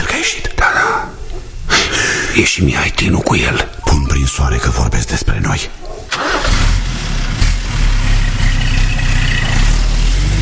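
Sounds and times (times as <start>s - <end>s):
speech: 0.2s - 1.1s, 2.4s - 6.2s
car engine running and revving as the car drives away: 6.1s - 10.4s.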